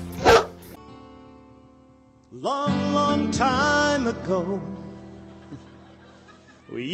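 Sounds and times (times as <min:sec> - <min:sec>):
dog barking: 0:00.2 - 0:00.6
speech: 0:02.4 - 0:04.8, 0:06.7 - 0:06.9
laughter: 0:05.0 - 0:06.9.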